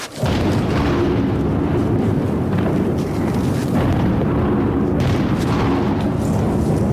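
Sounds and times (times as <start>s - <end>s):
deep booms of distant explosions in city center: 0.2s - 6.9s
heavy continuous low rumbling: 0.2s - 6.9s.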